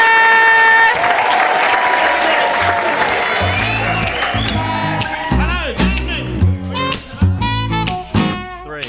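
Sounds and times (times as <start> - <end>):
live audience applause and cheering in Edinburgh: 0.0 - 8.3
low musical notes: 3.2 - 8.8.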